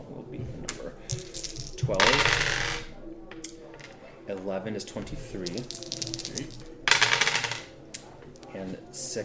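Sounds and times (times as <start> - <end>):
dice clattering for a tabletop role-playing damage roll: 0.7 - 4.0, 5.0 - 8.5
speech: 4.3 - 6.8, 8.6 - 9.2.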